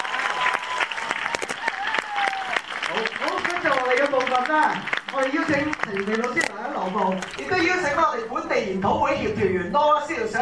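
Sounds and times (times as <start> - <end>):
audience applause at a seminar stage event: 0.0 - 7.8
speech: 4.4 - 10.4.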